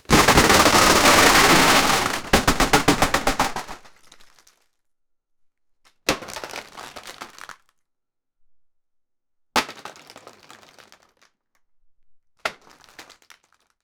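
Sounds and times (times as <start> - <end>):
several plastic objects falling: 0.0 - 3.9.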